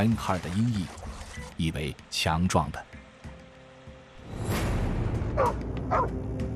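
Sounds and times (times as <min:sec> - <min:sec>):
speech: 0:00.0 - 0:02.9, 0:05.4 - 0:06.4
large Mongolian mastiff barking: 0:05.4 - 0:06.1.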